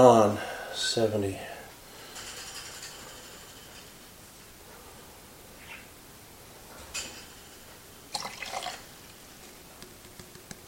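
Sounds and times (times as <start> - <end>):
speech: 0.0 - 1.5
water pouring into a measuring container: 8.1 - 8.9.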